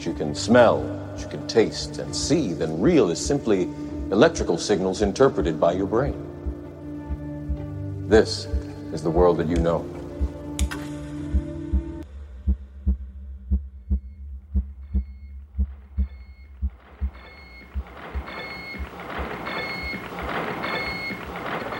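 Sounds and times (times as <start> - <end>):
speech: 0.0 - 6.3, 8.1 - 10.0
rhythmic heartbeat-like thumping pulse of computer: 5.0 - 10.6, 11.2 - 21.7
whirring electronic noise: 14.8 - 21.7
dense mechanical hum: 15.6 - 21.7.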